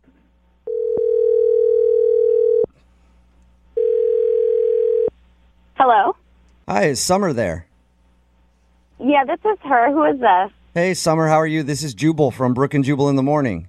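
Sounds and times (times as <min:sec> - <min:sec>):
telephone dial tone: 0:00.7 - 0:02.7, 0:03.8 - 0:05.1
speech: 0:06.8 - 0:07.7, 0:09.1 - 0:13.6.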